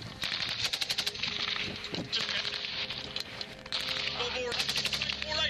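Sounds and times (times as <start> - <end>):
machine-gun fire in a gun battle between the British Army and the Taliban: 0.2 - 2.9, 3.7 - 5.3.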